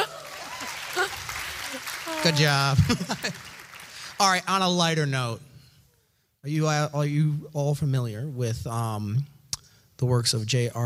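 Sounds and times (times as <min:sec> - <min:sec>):
people laughing: 0:00.0 - 0:03.6
audience clapping: 0:00.0 - 0:04.8
speech: 0:02.2 - 0:03.5, 0:04.2 - 0:05.5, 0:06.4 - 0:09.3, 0:10.0 - 0:10.8.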